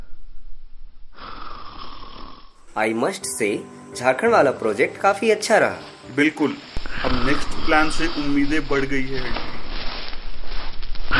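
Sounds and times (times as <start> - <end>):
woman snoring while asleep on a chair: 1.1 - 2.7, 6.8 - 8.3
speech: 2.8 - 9.5.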